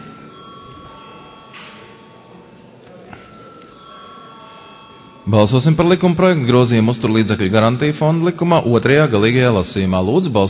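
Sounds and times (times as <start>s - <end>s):
faint murmur: 0.0s - 5.4s
electric voting bell ringing during a parliamentary session: 0.0s - 9.7s
speech: 5.3s - 10.4s.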